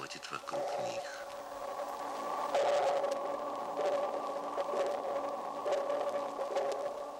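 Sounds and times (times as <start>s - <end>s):
faint pulses of dolphin echolocation echoes off underwater objects: 0.0s - 7.1s
dolphin echolocation slowed down, droning tonal hum: 0.5s - 7.1s.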